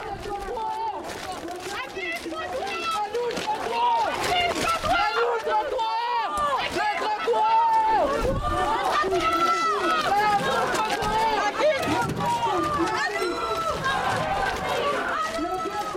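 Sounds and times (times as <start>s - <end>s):
footsteps in the street: 0.0s - 15.9s
large protest crowd shouting and cheering in the street: 0.0s - 15.9s.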